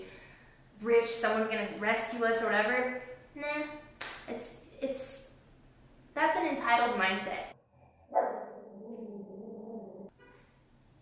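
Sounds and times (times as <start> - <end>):
speech: 0.8 - 5.2, 6.2 - 7.5
dog barking: 8.1 - 8.7.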